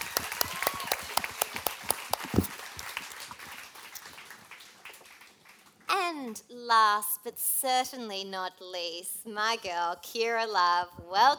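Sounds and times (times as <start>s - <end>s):
small group of people clapping: 0.0s - 6.0s
speech: 6.3s - 11.3s.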